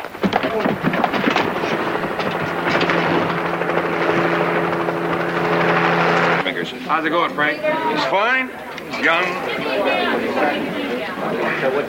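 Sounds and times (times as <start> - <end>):
helicopters arriving with rotor drone: 0.0 - 7.0
speech: 6.9 - 11.8.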